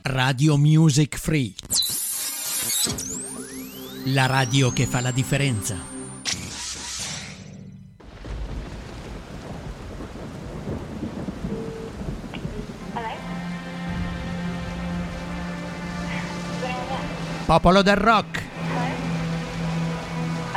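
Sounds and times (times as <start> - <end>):
speech: 0.2 - 1.8, 2.8 - 3.3, 4.0 - 5.9, 17.5 - 18.4
sustained musical tones: 2.8 - 6.3, 11.4 - 20.5
sharp crack of thunder: 8.0 - 16.2
steady rain hissing: 8.0 - 17.6, 18.2 - 20.5
low rumbling of thunder: 8.0 - 20.5.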